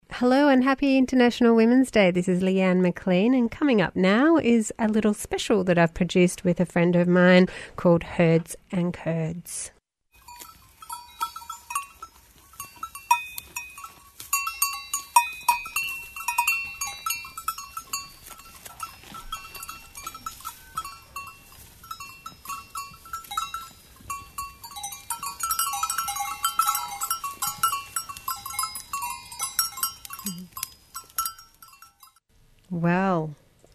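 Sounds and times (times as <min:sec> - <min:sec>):
speech: 0:00.2 - 0:09.8
cowbells on grazing goats clanking in Switzerland: 0:10.2 - 0:32.2.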